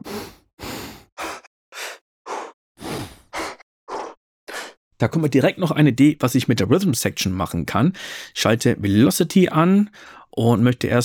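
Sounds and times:
solo breathing vocal samples with sharp inhales and exhales: 0.0 - 4.8
speech: 5.0 - 11.0.

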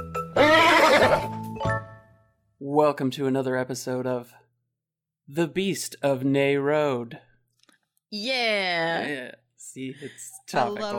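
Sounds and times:
horse whinny with snorting tail: 0.3 - 1.4
speech: 2.6 - 4.4, 5.3 - 7.3, 8.1 - 10.9.

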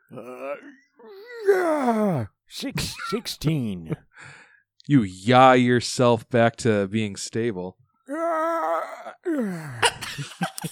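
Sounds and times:
person yawning: 0.0 - 2.3, 8.1 - 10.0
speech: 0.1 - 8.5, 9.2 - 10.7
laughter: 9.8 - 10.7.

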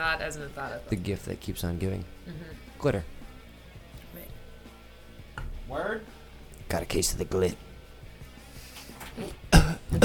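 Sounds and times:
speech: 0.0 - 3.2, 5.7 - 7.7, 9.2 - 10.0
laughter: 2.3 - 2.7
person coughing: 9.2 - 10.0.

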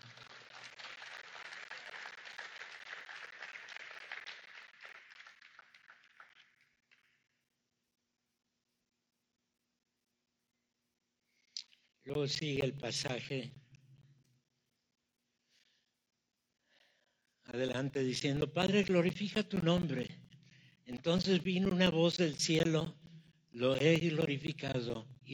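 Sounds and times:
crowd clapping in applause: 0.0 - 7.2
speech: 12.1 - 13.6, 17.6 - 20.2, 21.0 - 23.0, 23.6 - 25.3.

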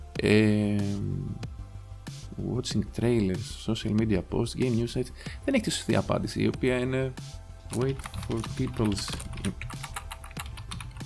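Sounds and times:
speech: 0.2 - 1.0, 2.4 - 9.6
typing on a computer keyboard: 7.7 - 11.0.

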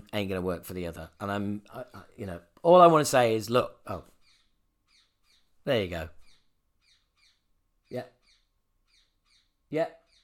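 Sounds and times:
speech: 0.1 - 4.1, 5.6 - 6.2, 7.9 - 8.2, 9.7 - 10.0
parakeet alarm call: 4.2 - 5.6, 6.2 - 10.2.

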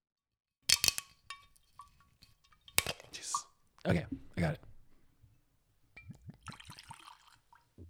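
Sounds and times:
whiskey bottle seal cracking open: 0.7 - 2.0, 2.7 - 3.2
whiskey glugging from a bottle into a glass: 0.8 - 4.8, 5.9 - 7.8
speech: 3.8 - 4.6.

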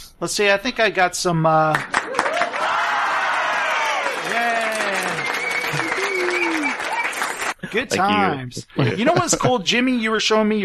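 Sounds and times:
speech: 0.2 - 2.7, 7.7 - 10.6
crowd applauding: 1.7 - 7.6
laughter: 4.4 - 9.6.

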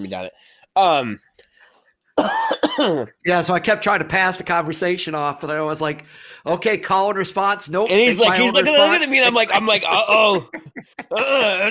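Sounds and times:
speech: 0.0 - 1.3, 2.2 - 11.6
person coughing: 2.2 - 3.2
laughter: 8.3 - 11.6.

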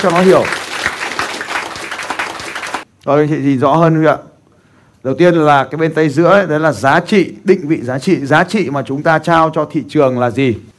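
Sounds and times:
speech: 0.0 - 0.6, 3.0 - 4.3, 5.0 - 10.7
audience applauding a motivational speaker: 0.0 - 2.8.

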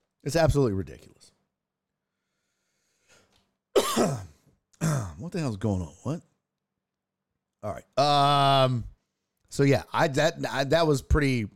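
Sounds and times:
speech: 0.2 - 1.3, 4.0 - 4.3, 5.2 - 6.3, 7.6 - 8.9, 9.5 - 11.5
raspy cough: 3.7 - 5.2
rough throat clearing: 3.8 - 5.2.

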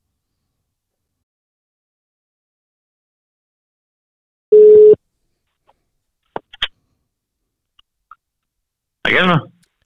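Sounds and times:
outgoing phone call ringback tone: 4.5 - 5.0
speech: 9.1 - 9.5.

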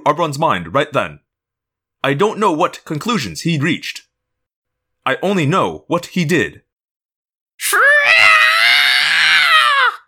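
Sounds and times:
speech: 0.0 - 1.2, 2.0 - 4.0, 5.0 - 6.6, 7.6 - 7.8
high-pitched slithering creature scream: 7.6 - 10.0.

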